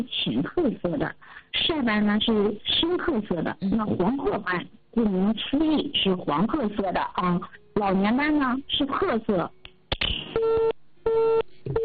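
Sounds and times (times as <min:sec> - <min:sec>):
speech: 0:00.0 - 0:09.6
telephone busy tone after a dropped call line: 0:10.4 - 0:11.8.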